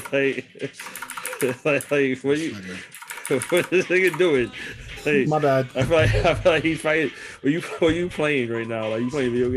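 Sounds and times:
rapid typing on a computer keyboard: 0:00.0 - 0:02.0, 0:02.8 - 0:04.4
laughter: 0:00.1 - 0:09.5
speech: 0:00.1 - 0:09.5.

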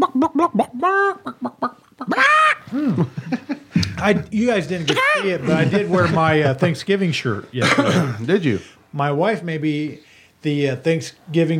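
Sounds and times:
person imitating chicken clucks and squawking bawks: 0:00.0 - 0:03.1, 0:04.9 - 0:05.7
laughter: 0:02.6 - 0:06.8
speech: 0:04.1 - 0:11.5.

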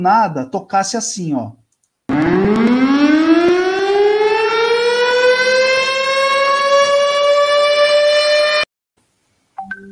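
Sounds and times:
speech: 0:00.0 - 0:01.6, 0:02.4 - 0:03.6
emergency flood alert alarm from phone app: 0:02.1 - 0:08.7.

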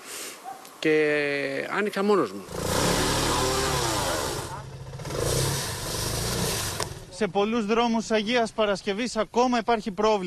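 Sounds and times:
speech: 0:00.8 - 0:03.0, 0:07.2 - 0:10.2
jeep engine revving on a road in Agia Paraskevi: 0:02.4 - 0:07.2.

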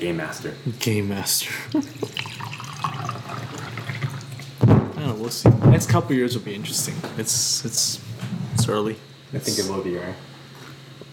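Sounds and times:
speech: 0:00.0 - 0:02.9, 0:05.2 - 0:10.3
water pouring in a continuous splashing stream: 0:01.7 - 0:04.6.

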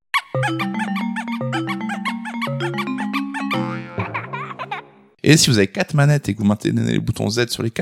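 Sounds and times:
high wobbly squeaky-toy squeals and chirps: 0:00.1 - 0:04.4
bright bouncy console electronic startup jingle: 0:00.4 - 0:04.2
speech: 0:00.5 - 0:00.9, 0:05.3 - 0:07.8.

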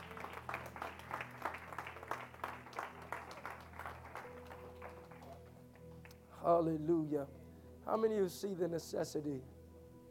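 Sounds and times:
crowd applause after a prayer: 0:00.0 - 0:06.1
speech: 0:06.4 - 0:09.6.

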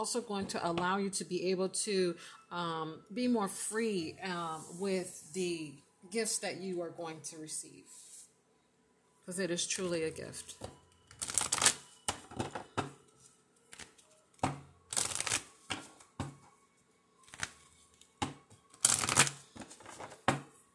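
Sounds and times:
speech: 0:00.0 - 0:08.0, 0:09.3 - 0:10.8
deck of angel oracle cards being shuffled: 0:11.1 - 0:12.6, 0:13.7 - 0:14.0, 0:14.9 - 0:16.0, 0:17.2 - 0:18.1, 0:18.7 - 0:20.4.

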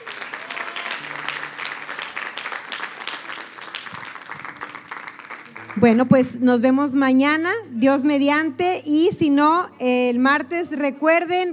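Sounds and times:
crowd applauding: 0:00.0 - 0:06.4
speech: 0:05.8 - 0:11.5.

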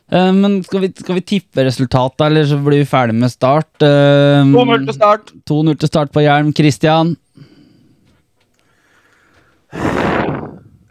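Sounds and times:
speech: 0:00.1 - 0:07.5, 0:09.7 - 0:10.0
heavy breathing into the microphone: 0:07.3 - 0:10.8.

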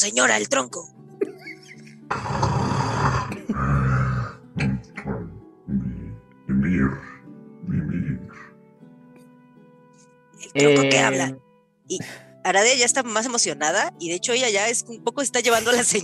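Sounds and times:
speech: 0:00.0 - 0:01.0, 0:06.7 - 0:07.1, 0:10.5 - 0:16.0
voice imitating loud snoring: 0:02.1 - 0:08.4.

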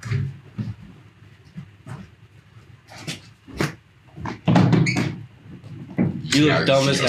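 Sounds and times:
door opening and shutting: 0:04.5 - 0:05.2
speech: 0:06.4 - 0:07.0.

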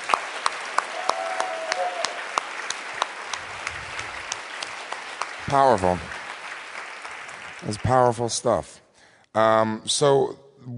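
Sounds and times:
audience applause: 0:00.0 - 0:08.4
speech: 0:05.5 - 0:06.1, 0:07.6 - 0:10.7.

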